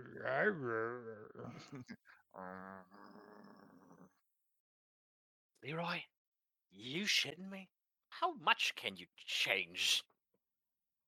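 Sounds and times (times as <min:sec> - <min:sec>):
speech: 0:00.0 - 0:03.7, 0:05.6 - 0:06.1, 0:06.7 - 0:10.1
person's voice imitating drowsy grumbling growls of someone waking up: 0:00.0 - 0:04.3.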